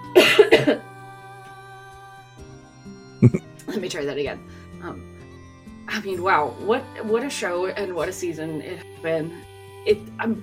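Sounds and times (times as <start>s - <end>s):
coughing and phlegmy throat clearing: 0.2s - 0.8s, 3.2s - 3.4s
speech: 0.6s - 0.9s, 3.2s - 5.1s, 5.9s - 10.4s.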